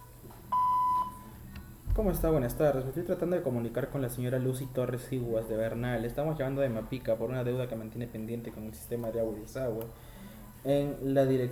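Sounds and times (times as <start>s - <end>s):
voicemail beep tone on a phone line: 0.5s - 1.3s
speech: 2.0s - 11.4s.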